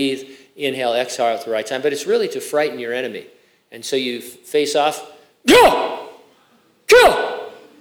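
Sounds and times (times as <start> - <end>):
speech: 0.0 - 6.0
loud martial arts kiai shouts: 5.5 - 6.2, 6.9 - 7.6.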